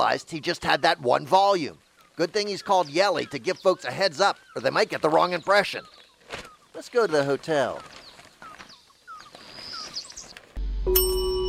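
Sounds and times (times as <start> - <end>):
speech: 0.0 - 8.0
hotel service bell ding: 10.9 - 11.4.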